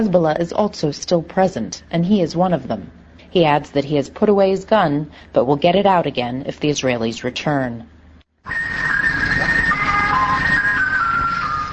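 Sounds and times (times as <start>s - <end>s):
speech: 0.0s - 8.9s
ice cream truck jingle: 8.5s - 11.7s
road noise: 8.5s - 11.7s.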